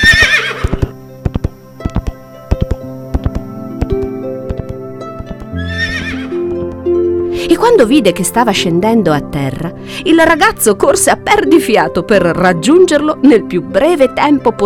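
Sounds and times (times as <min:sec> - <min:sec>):
horse whinnying: 0:00.0 - 0:00.9, 0:05.6 - 0:06.3
horse hooves clip-clopping in a trot: 0:00.0 - 0:07.0
low sustained musical drone: 0:01.0 - 0:13.6
speech: 0:07.5 - 0:14.6.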